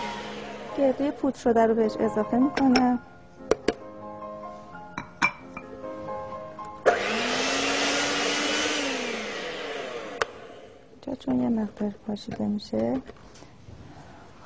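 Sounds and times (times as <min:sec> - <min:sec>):
electric mixer beating dough: 0:00.0 - 0:01.2, 0:06.8 - 0:10.8
speech: 0:00.8 - 0:03.1, 0:11.2 - 0:13.5.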